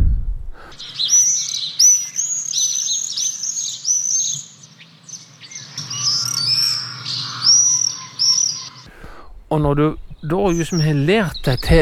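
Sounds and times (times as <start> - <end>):
Common Swift screaming calls: 0.7 - 9.0
speech: 9.5 - 11.7.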